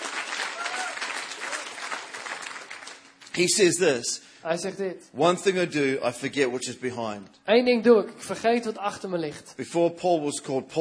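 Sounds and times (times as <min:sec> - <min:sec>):
crowd applauding with many hands clapping: 0:00.0 - 0:03.4
speech: 0:03.4 - 0:10.7.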